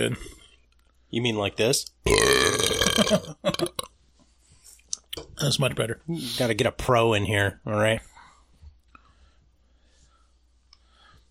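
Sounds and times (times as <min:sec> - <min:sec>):
speech: 0:00.0 - 0:00.4, 0:01.1 - 0:03.9, 0:05.4 - 0:08.1
long loud rumbling burp: 0:02.1 - 0:03.9.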